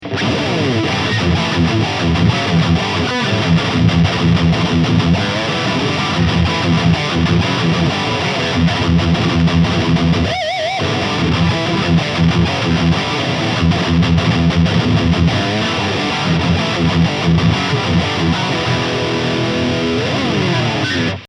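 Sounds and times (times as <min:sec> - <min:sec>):
electric guitar with passive pickups in high gain mode: 0:00.0 - 0:21.2.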